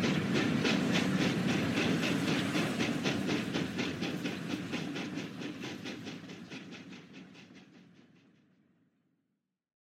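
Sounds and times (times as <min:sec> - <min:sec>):
steam train chugging along rails: 0:00.0 - 0:08.2.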